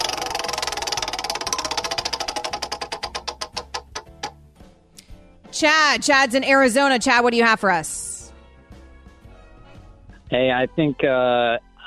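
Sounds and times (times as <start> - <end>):
prize wheel spinning and ticking: 0.0 - 4.4
speech: 5.6 - 8.0, 10.4 - 11.8.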